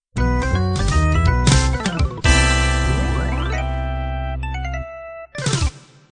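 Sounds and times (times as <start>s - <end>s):
B3 jazz music ending: 0.2s - 5.4s.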